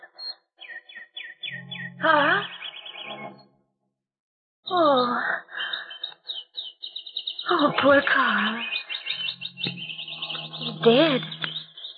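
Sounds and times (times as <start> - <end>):
small caged birds chirping: 0.6 - 3.4, 5.6 - 11.9
speech: 2.0 - 2.5, 7.8 - 8.7, 10.8 - 11.3.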